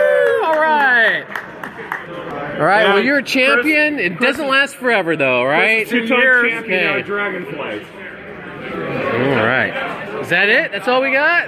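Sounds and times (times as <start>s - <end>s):
people cheering with whoops and shouts: 0.0s - 2.2s
scattered clapping: 0.0s - 2.5s
speech: 2.6s - 11.4s.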